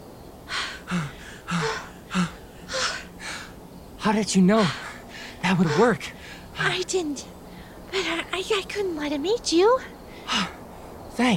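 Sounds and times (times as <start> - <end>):
person panting and gasping catching breath after running: 0.5 - 3.6, 4.5 - 6.5, 10.1 - 10.6
speech: 0.9 - 1.2, 4.1 - 4.8, 5.4 - 10.5, 11.2 - 11.3.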